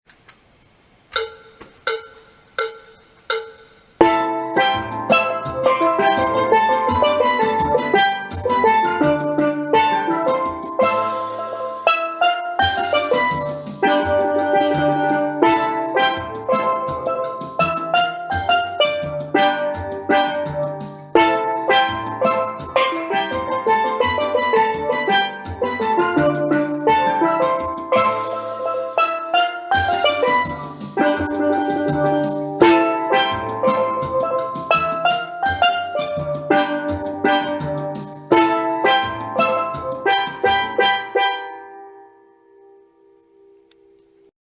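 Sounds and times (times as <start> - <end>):
steel band playing tenor phrases tutti: 1.2 - 41.9.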